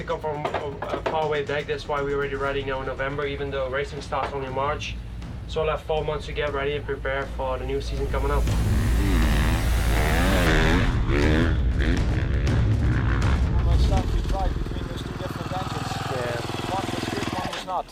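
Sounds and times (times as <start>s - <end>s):
speech: 0.0s - 8.8s
racing engine revving through the gears: 7.6s - 17.5s.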